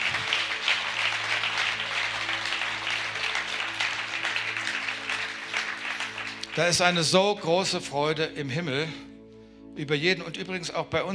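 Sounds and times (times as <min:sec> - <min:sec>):
congregation applause at a church worship service: 0:00.0 - 0:07.4
speech: 0:06.6 - 0:09.1, 0:09.8 - 0:11.1.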